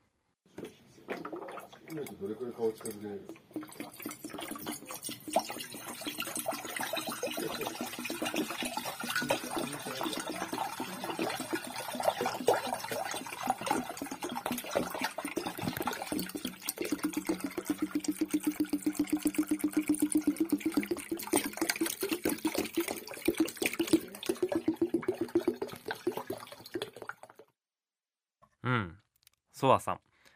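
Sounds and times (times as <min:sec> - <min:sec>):
water from a hot-water bottle glugging and splashing into a pot: 0:01.0 - 0:27.5
speech: 0:01.9 - 0:03.8
husband and daughter chatting quietly: 0:09.1 - 0:11.4.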